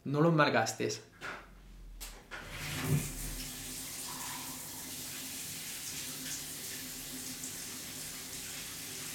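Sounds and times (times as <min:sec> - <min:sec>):
speech: 0:00.1 - 0:01.3, 0:02.9 - 0:03.1
water gushing from an opened tap: 0:02.4 - 0:09.1.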